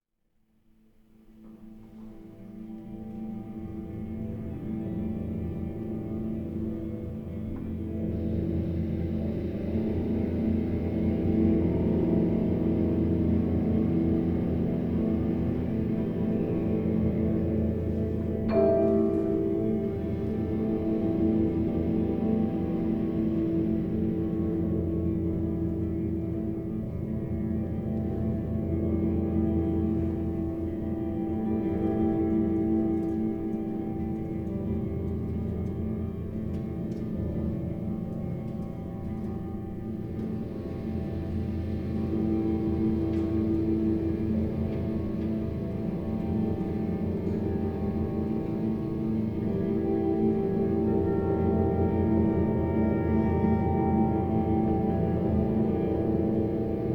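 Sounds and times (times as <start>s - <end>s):
soundscape: 1.7s - 56.9s.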